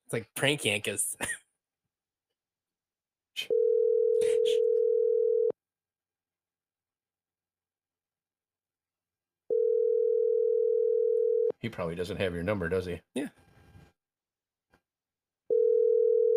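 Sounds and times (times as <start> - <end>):
speech: 0.1 - 1.4, 11.6 - 13.4
phone ringback tone, steady electronic purr: 3.5 - 5.6, 9.5 - 11.5, 15.5 - 16.3.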